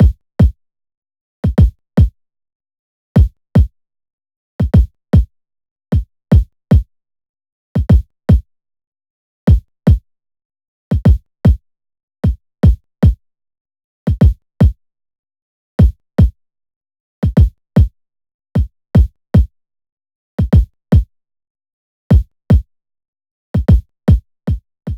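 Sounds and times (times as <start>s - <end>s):
kick drums at 152 bpm: 0.0s - 0.6s, 1.4s - 2.1s, 3.2s - 3.7s, 4.6s - 5.3s, 6.0s - 6.9s, 7.8s - 8.4s, 9.5s - 10.0s, 10.9s - 11.6s, 12.2s - 13.2s, 14.1s - 14.8s, 15.8s - 16.4s, 17.2s - 17.9s, 18.6s - 19.5s, 20.4s - 21.1s, 22.1s - 22.6s, 23.6s - 24.9s.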